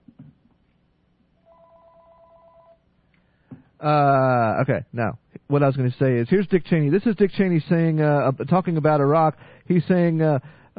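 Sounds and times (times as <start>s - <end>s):
low hiss: 0.0s - 10.7s
telephone ringing with a rapid warbling electronic trill: 1.4s - 2.8s
speech: 3.8s - 10.7s.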